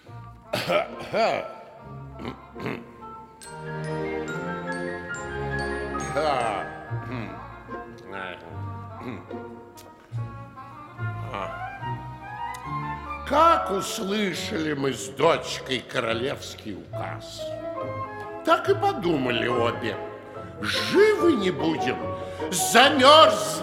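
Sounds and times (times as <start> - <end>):
sustained orchestral music: 0.0 - 23.6
old woman clearing her throat: 0.5 - 1.6, 2.2 - 3.0
speech: 0.7 - 1.6, 2.2 - 2.8, 13.3 - 17.6, 18.5 - 23.6.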